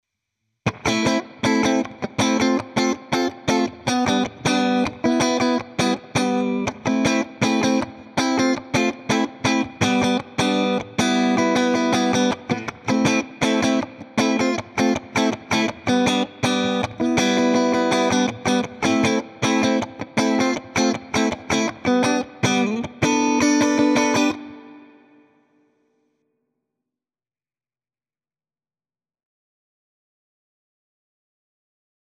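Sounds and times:
clean rhythm guitar through a Twin Reverb amp simulation: 0.6 - 25.6.

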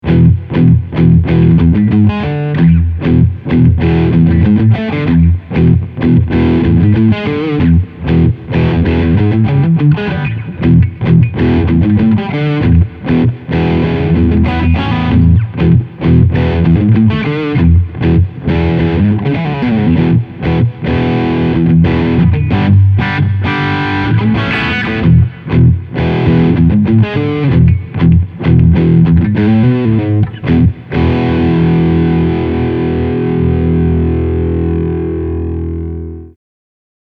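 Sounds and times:
overdrive bass: 0.0 - 36.4.

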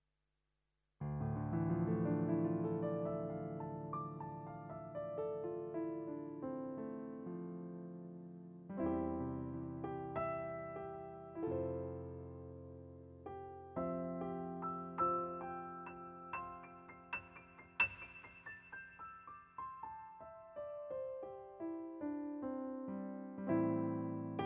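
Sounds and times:
natural grand piano voice on a digital piano: 1.0 - 24.4.

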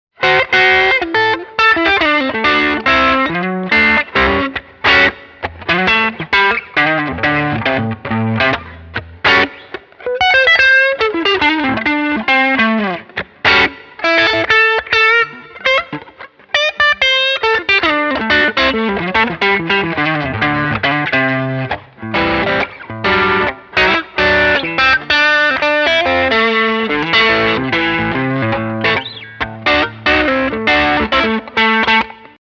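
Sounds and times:
guitar through an overdrive pedal switched on: 0.2 - 32.3.

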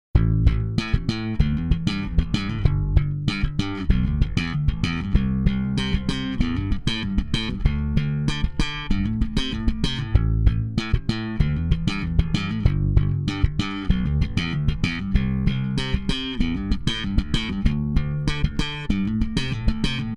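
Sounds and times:
bass through Chandler EMI RS660 limiter set fast: 0.0 - 20.1.

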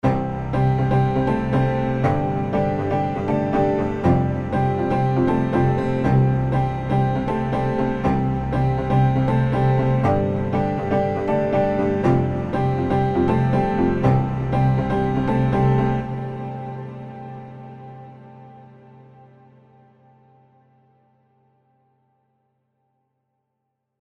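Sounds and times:
cinematic grand synth pop music: 0.0 - 18.8.

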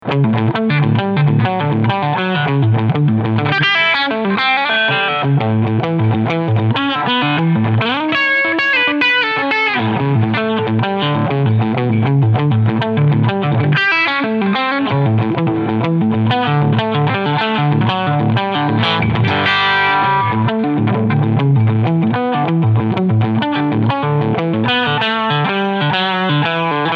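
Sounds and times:
Quilter Superblock UK amplifier AC Top Boost at full gain with limiter: 0.0 - 26.9.

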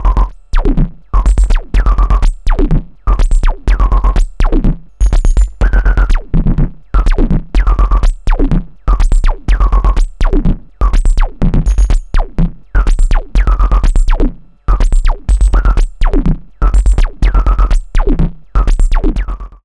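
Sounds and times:
drums with liquid glitch pitch change effect: 0.0 - 19.6.

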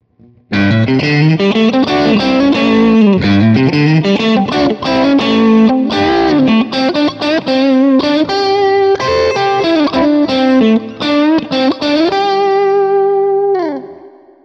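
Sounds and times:
electric guitar crunch on middle and neck pickups: 0.0 - 14.3.

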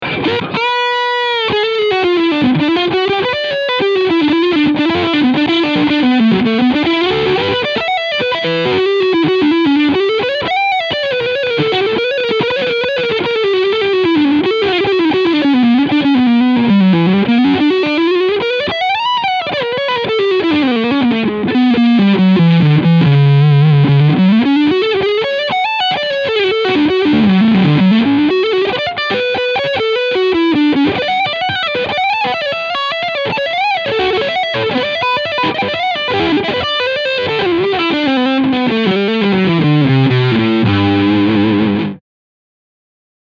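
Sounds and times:
Harley Benton Dullahan FT 24 BKS guitar lead sound with both single-coil pickups: 0.0 - 42.0.

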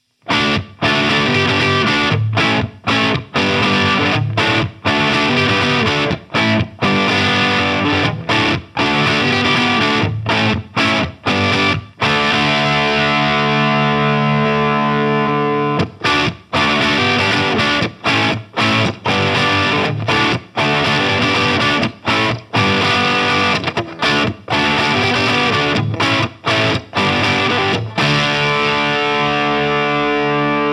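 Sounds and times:
Solar Guitars E1.6 electric guitar with crunch tone: 0.0 - 30.7.

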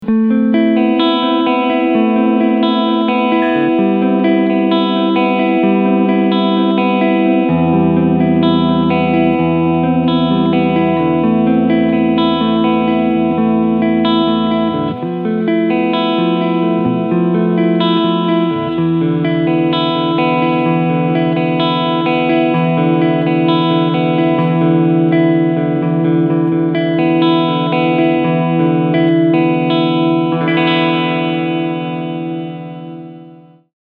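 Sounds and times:
clean electric guitar on both pickups: 0.0 - 33.7.

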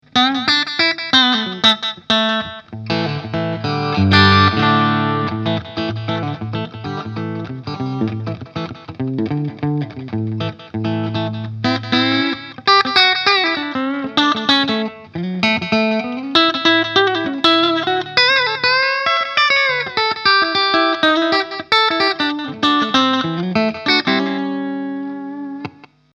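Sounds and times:
Danelectro 59X electric guitar with coil split, clean: 0.1 - 26.1.

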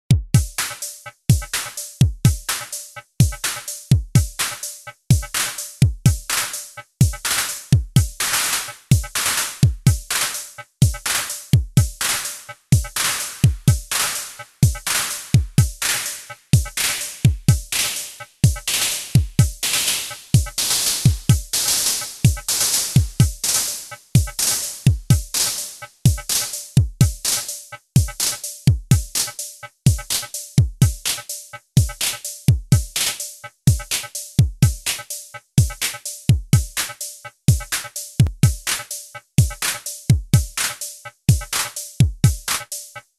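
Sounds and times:
drum machine clap: 0.1 - 43.1.

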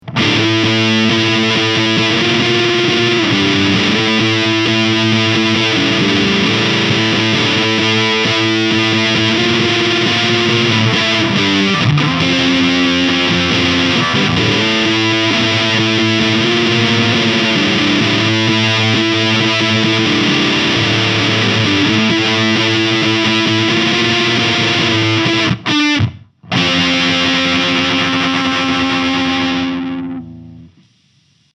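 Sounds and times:
fuzz pedal high gain guitar: 0.0 - 31.5.

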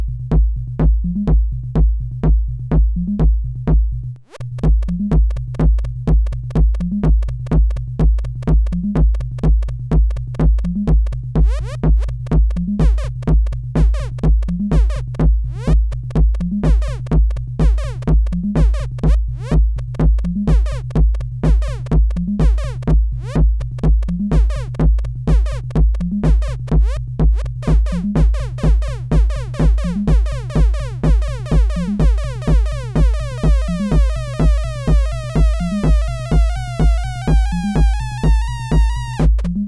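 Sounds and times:
VCF sine bass synth: 0.1 - 39.6
FM synth percussion: 4.6 - 39.6.

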